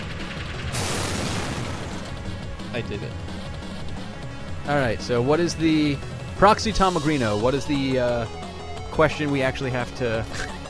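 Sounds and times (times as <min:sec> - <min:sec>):
explosion sound effect with rumbling roar and harsh blast: 0:00.7 - 0:02.4
speech: 0:02.8 - 0:03.4, 0:04.7 - 0:10.6.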